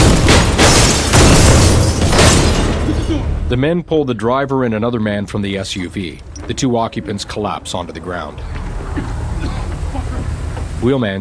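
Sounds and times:
barrage of gunfire from armed men shooting at an SUV: 0:00.0 - 0:02.9
speech: 0:03.5 - 0:09.5, 0:10.8 - 0:11.1.

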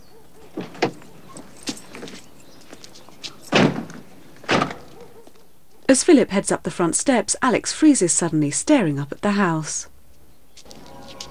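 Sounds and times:
car door clunks: 0:00.4 - 0:05.2
car door handle clicks: 0:03.5 - 0:05.1
speech: 0:05.9 - 0:09.9.

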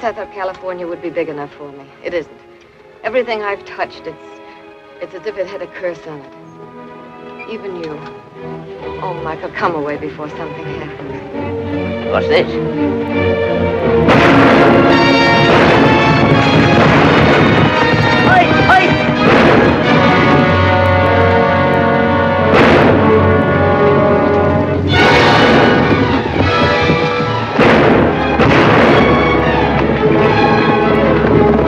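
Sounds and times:
speech: 0:00.0 - 0:04.4, 0:05.0 - 0:06.5, 0:07.5 - 0:14.1
gunshots as horsemen fire on workers at a vineyard: 0:14.0 - 0:21.5, 0:22.4 - 0:31.6.

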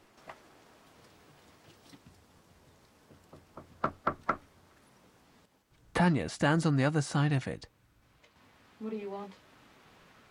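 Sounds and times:
knocking on a glass-panelled front door: 0:03.3 - 0:04.4
speech: 0:06.0 - 0:07.7.

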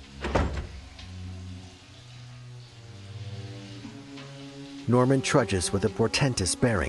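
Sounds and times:
door shutting with a firm thud: 0:00.0 - 0:01.3
speech: 0:04.9 - 0:06.8.

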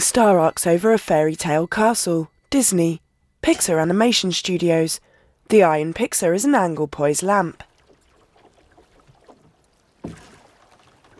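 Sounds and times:
speech: 0:00.0 - 0:07.7, 0:10.0 - 0:10.3
oars dipping and pulling a small boat across a calm sea: 0:07.0 - 0:11.1
soft lapping of calm sea water: 0:07.4 - 0:11.1
clearer splash of an oar stroke: 0:07.6 - 0:11.1.

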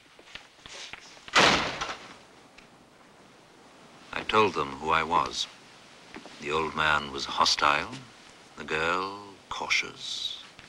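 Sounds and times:
door being shut with a loud slam: 0:01.3 - 0:02.2
speech: 0:04.2 - 0:05.6, 0:06.4 - 0:10.3
faint taps and thumps: 0:06.1 - 0:06.4.

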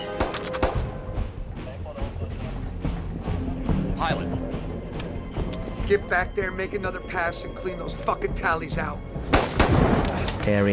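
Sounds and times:
rifle and pistol gunfire: 0:00.0 - 0:03.8, 0:09.4 - 0:10.2
dense rumbling background: 0:00.4 - 0:07.8
speech: 0:05.9 - 0:10.7.

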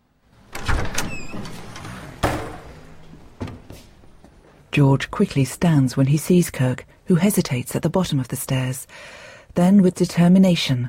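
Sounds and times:
front door latch clicking: 0:00.5 - 0:03.6
speech: 0:04.8 - 0:10.8.

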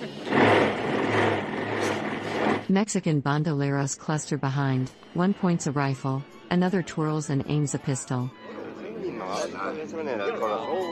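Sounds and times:
motorcycle engine revving: 0:00.0 - 0:02.7
speech: 0:02.7 - 0:08.4, 0:09.3 - 0:10.9.

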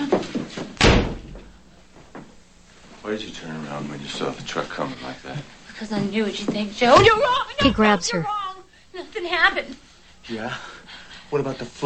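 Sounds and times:
bedroom door slamming shut: 0:00.8 - 0:01.6
speech: 0:03.1 - 0:08.4, 0:09.2 - 0:10.7, 0:11.3 - 0:11.8.

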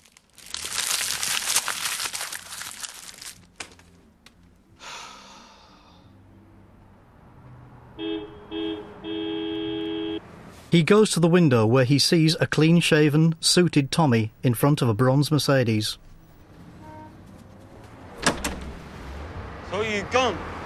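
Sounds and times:
empty money envelope being crushed: 0:00.0 - 0:04.0
car horn tooting: 0:08.0 - 0:10.2, 0:16.8 - 0:17.2
speech: 0:10.7 - 0:16.1, 0:20.1 - 0:20.6.

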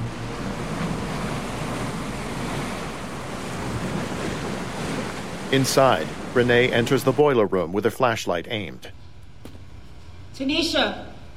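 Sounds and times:
water rushing through a canal: 0:00.0 - 0:08.8
speech: 0:05.5 - 0:09.0, 0:10.4 - 0:11.1.

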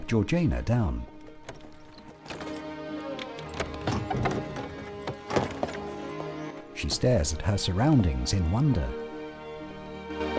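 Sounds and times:
speech: 0:00.1 - 0:01.1, 0:06.8 - 0:09.0
horse-drawn carriage rumbling: 0:01.1 - 0:06.6
horse hooves clip-clopping as a horse-drawn carriage arrives: 0:01.2 - 0:06.2.

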